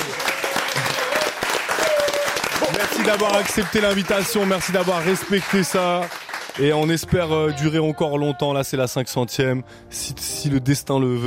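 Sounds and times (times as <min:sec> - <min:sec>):
applause of clapping hands: 0:00.0 - 0:07.3
speech: 0:02.8 - 0:11.2.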